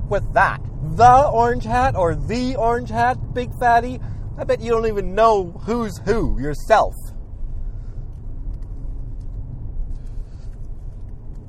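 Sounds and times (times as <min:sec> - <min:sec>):
car engine droning: 0:00.0 - 0:11.4
speech: 0:00.1 - 0:07.0.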